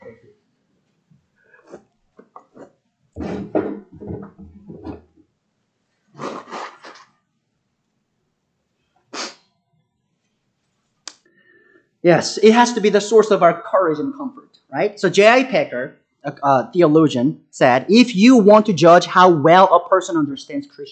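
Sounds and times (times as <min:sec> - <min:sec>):
breathy sniffs of a preacher: 0:06.1 - 0:07.1, 0:09.1 - 0:09.5
speech: 0:12.0 - 0:20.9.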